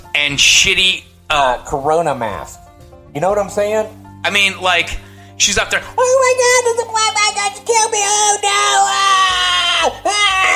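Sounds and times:
speech: 0.2 - 10.5
adult voice imitating a woman screaming like a child: 6.2 - 10.5.

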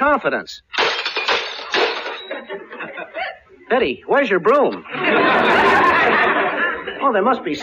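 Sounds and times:
speech: 0.2 - 1.0, 2.3 - 6.4, 7.0 - 7.6
clatter of breaking dish pieces: 0.7 - 2.5
juggled dishes crashing and shattering: 0.7 - 2.6
laughter: 2.3 - 3.6, 4.5 - 7.4.

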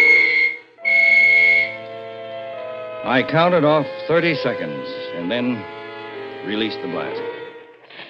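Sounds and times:
long shrill whistle blasts signaling all clear before a blast: 0.0 - 1.9
speech: 3.0 - 5.8, 6.4 - 7.4.

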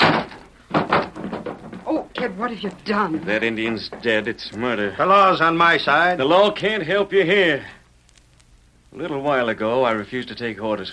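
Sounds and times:
wooden cabin door swinging shut with a heavy thud: 0.0 - 1.9
speech: 2.2 - 7.8, 8.9 - 10.9.

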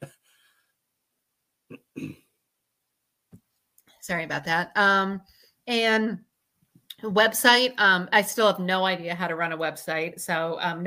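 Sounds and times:
rough throaty coughs: 1.7 - 2.3
speech: 4.0 - 6.3, 6.9 - 10.8.

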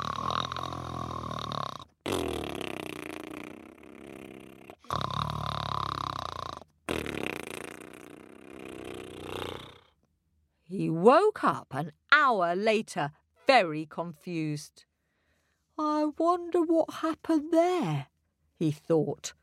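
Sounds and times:
voice imitating deep rumbling throaty snoring: 0.0 - 10.0
speech: 10.7 - 14.9, 16.2 - 19.4.

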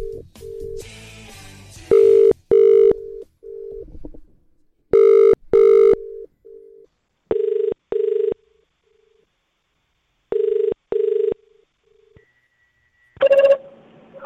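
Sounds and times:
phone dialing tones on an outgoing call: 0.0 - 0.9, 1.9 - 3.9, 4.9 - 8.4, 10.3 - 11.4
telephone ringback beeps in short pairs: 1.9 - 3.8, 5.0 - 6.2.

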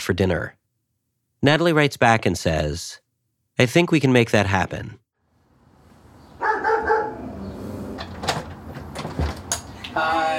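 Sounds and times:
speech: 0.0 - 0.6, 1.4 - 3.0, 3.6 - 5.0
dog barking at a house: 6.4 - 7.4
door-like bumps: 7.8 - 9.7.

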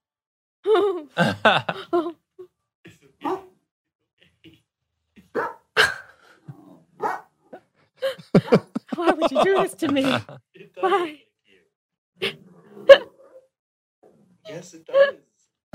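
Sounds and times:
laughter: 0.7 - 2.1, 8.0 - 11.2
speech: 1.0 - 2.2, 9.4 - 11.2
dog barking at itself in a video game: 3.2 - 3.5, 5.3 - 5.7, 7.0 - 7.3, 8.4 - 8.8.

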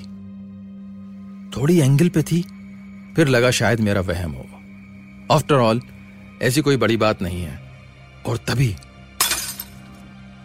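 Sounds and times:
speech: 1.5 - 2.6, 3.2 - 4.6, 5.3 - 7.6, 8.2 - 8.9
ceramic or glass vase smashing on a hard floor: 9.2 - 9.9.

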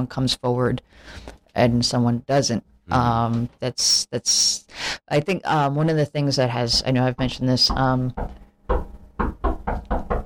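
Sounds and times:
speech: 0.0 - 8.9
knocking on a door: 6.7 - 10.2.

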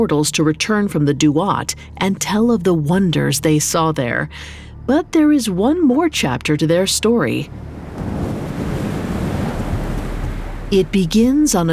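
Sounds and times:
speech: 0.0 - 8.2, 10.7 - 11.7
fierce desert wind howling at night through city streets: 7.3 - 11.7.

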